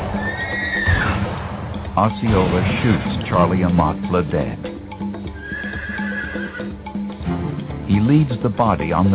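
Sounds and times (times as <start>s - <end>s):
horse neighing: 0.2s - 1.2s, 5.1s - 7.2s
speech: 2.0s - 4.8s, 8.0s - 9.1s.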